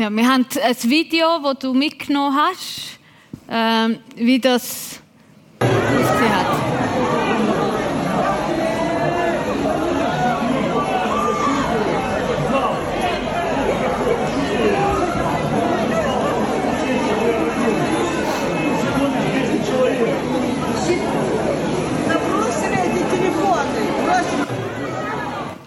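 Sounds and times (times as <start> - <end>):
speech: 0.0 - 5.0
large crowd of hundreds chattering before a Monday afternoon church service: 5.6 - 25.6.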